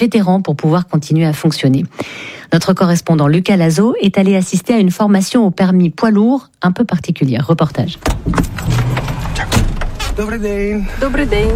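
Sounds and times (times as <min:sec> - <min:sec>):
speech: 0:00.0 - 0:09.6, 0:10.2 - 0:11.5
clunks and knocks as a woman climbs into a large truck cab: 0:07.8 - 0:10.4
large truck door and handle sounds: 0:07.9 - 0:10.3.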